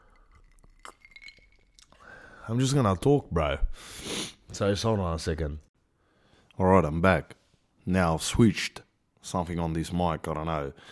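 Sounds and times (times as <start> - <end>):
ice cubes clinking in a glass: 0.1 - 1.8
speech: 2.5 - 5.7, 6.6 - 10.9.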